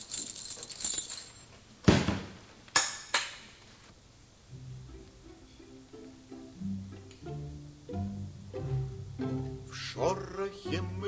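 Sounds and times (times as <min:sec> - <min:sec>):
bunch of library keys jangling as they are handed over: 0:00.0 - 0:01.6
soft plucked-sounding music notes: 0:04.5 - 0:11.0
speech: 0:10.0 - 0:11.0.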